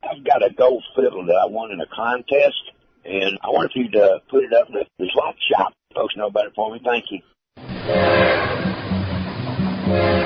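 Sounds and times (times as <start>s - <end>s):
speech: 0.3s - 8.6s
train rolling past with rumbling clattering: 7.8s - 10.2s.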